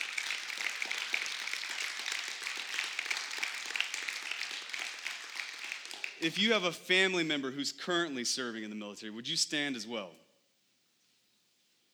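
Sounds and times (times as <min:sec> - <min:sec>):
large crowd applauding: 0:00.0 - 0:06.5
speech: 0:06.2 - 0:10.2.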